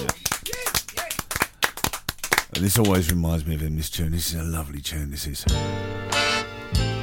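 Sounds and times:
people cheering: 0.0 - 1.4
small crowd applauding: 0.0 - 3.2
speech: 2.6 - 6.9.

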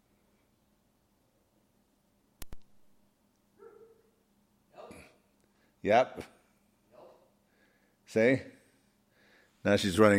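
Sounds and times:
dog barking: 3.6 - 4.2
speech: 5.8 - 6.4, 8.1 - 8.6, 9.6 - 10.1.

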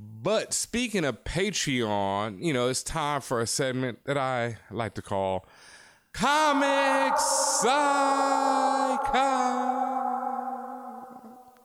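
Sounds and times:
speech: 0.2 - 10.0
voice holding a ringing note imitating a reverb tail: 6.2 - 11.6.

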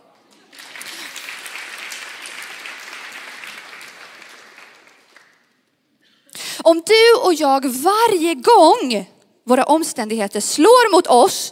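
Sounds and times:
audience applause: 0.2 - 5.7
speech: 6.6 - 11.5.

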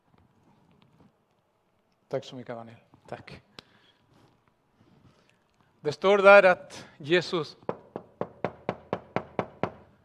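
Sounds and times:
speech: 2.1 - 3.5, 5.8 - 7.7
knocking on a door: 7.7 - 9.8.

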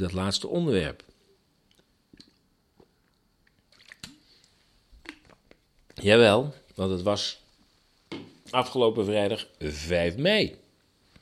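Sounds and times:
speech: 0.0 - 1.1, 6.0 - 7.4, 8.5 - 10.6
person sipping water with slurps: 1.6 - 5.9
wet mouth clicks: 1.7 - 4.3, 5.0 - 5.7
swallow: 1.7 - 5.6.

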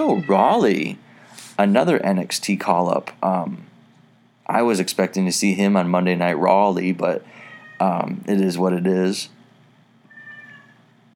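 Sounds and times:
cat meowing: 0.0 - 0.6, 7.5 - 7.9, 10.1 - 10.8
speech: 0.0 - 1.0, 1.6 - 3.7, 4.5 - 9.4
low hum: 0.0 - 11.1.

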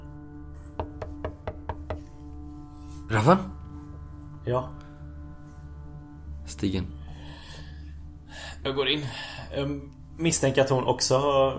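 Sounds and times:
gentle knocking on a door: 0.8 - 2.2
speech: 3.1 - 3.6, 4.4 - 4.8, 6.5 - 7.0, 8.6 - 11.5.

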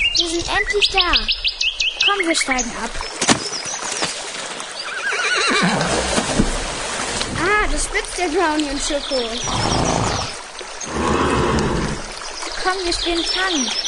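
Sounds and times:
stream splashing and trickling: 0.0 - 13.8
speech: 0.2 - 3.6, 7.7 - 10.0, 12.7 - 13.8
horse neighing: 4.9 - 6.1, 9.4 - 12.1.

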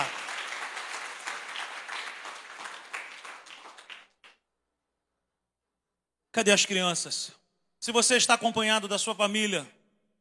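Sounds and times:
audience at a religious gathering applauding: 0.0 - 4.4
speech: 6.4 - 9.8.

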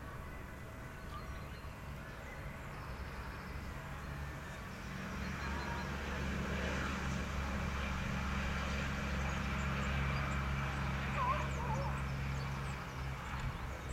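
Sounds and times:
low rumble of traffic or an engine in a park: 0.0 - 13.9
faint voices in a park: 10.6 - 12.2.

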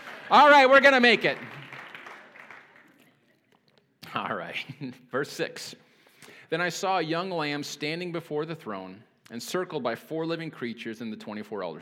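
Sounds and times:
audience applause: 0.0 - 3.1
speech: 0.3 - 1.6, 4.1 - 5.8, 6.5 - 11.7.

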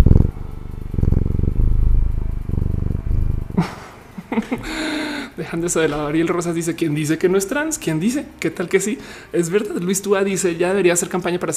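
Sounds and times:
cat purring: 0.0 - 4.0
laughter: 3.6 - 5.1
speech: 4.5 - 11.5.

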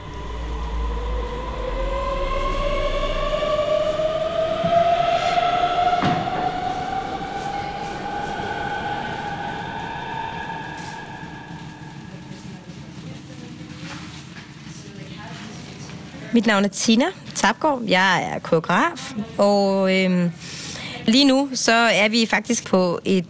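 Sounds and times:
train rumbling along the rails: 0.0 - 13.4
speech: 16.4 - 23.2.

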